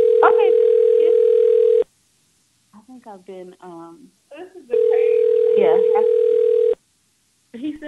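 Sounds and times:
telephone ringing tone during call transfer: 0:00.0 - 0:01.8, 0:04.8 - 0:06.8
speech: 0:03.2 - 0:06.2
speech: 0:04.3 - 0:06.1.

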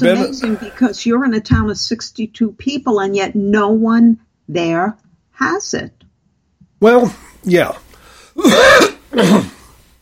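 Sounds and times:
ill person clearing the throat: 0:00.0 - 0:00.8, 0:08.4 - 0:09.6
ill person coughing: 0:00.0 - 0:00.9, 0:08.4 - 0:09.7
speech: 0:00.0 - 0:06.0, 0:06.8 - 0:07.8, 0:08.4 - 0:09.5.

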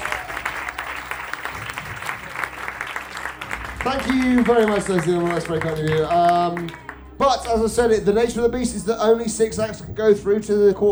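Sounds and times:
audience applause: 0:00.0 - 0:08.0
speech: 0:03.8 - 0:10.9.

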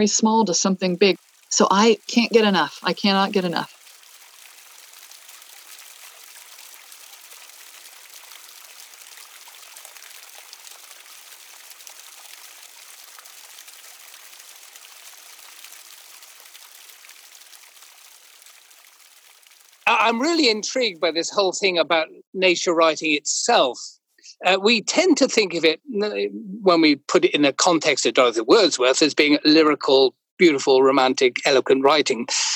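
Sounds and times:
speech: 0:00.0 - 0:03.7, 0:20.1 - 0:32.5
stream water flowing: 0:00.0 - 0:21.8.

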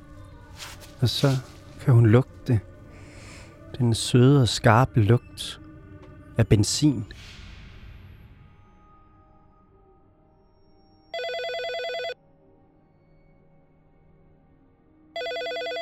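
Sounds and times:
speech: 0:01.0 - 0:02.7, 0:03.8 - 0:05.6, 0:06.4 - 0:07.3
telephone ringing: 0:11.2 - 0:12.2, 0:15.2 - 0:15.7.

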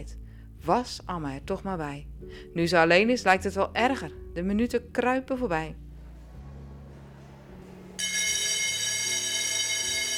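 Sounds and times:
speech: 0:00.0 - 0:05.8
electric school bell ringing for break: 0:08.0 - 0:10.1.

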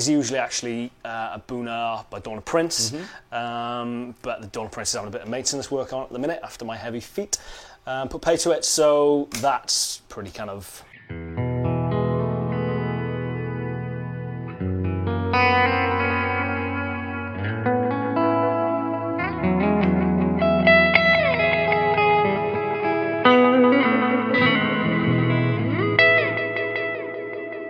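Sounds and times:
speech: 0:00.0 - 0:11.5
sustained electric guitar chords through delay pedal and reverb: 0:11.0 - 0:27.6.

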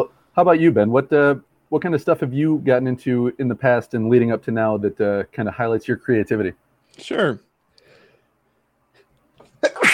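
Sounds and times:
speech: 0:00.0 - 0:07.5
person sneezing from seasonal allergies: 0:09.5 - 0:09.9.

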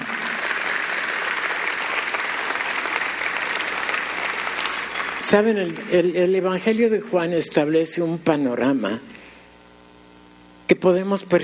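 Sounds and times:
congregation applauding: 0:00.0 - 0:06.8
speech: 0:05.2 - 0:09.2, 0:10.7 - 0:11.4.

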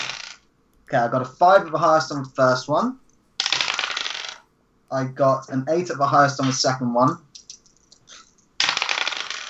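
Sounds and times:
small hard dice clattering onto a surface: 0:00.0 - 0:00.5, 0:03.4 - 0:04.4, 0:06.4 - 0:09.4
speech: 0:00.9 - 0:03.0, 0:04.9 - 0:07.3.

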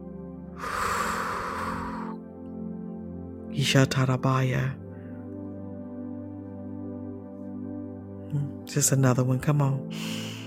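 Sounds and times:
deep breath drawn during a prayer service: 0:00.6 - 0:02.2, 0:09.9 - 0:10.4
speech: 0:03.6 - 0:04.8, 0:08.4 - 0:10.3.

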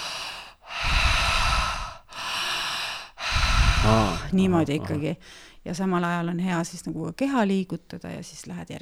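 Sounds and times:
deep open-mouth breathing in and out: 0:00.0 - 0:05.6
speech: 0:03.8 - 0:08.8.

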